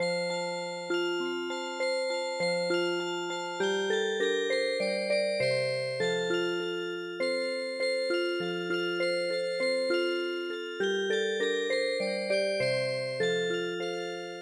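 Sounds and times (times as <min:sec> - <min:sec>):
Viennese waltz on a MIDI music box: 0:00.0 - 0:14.3.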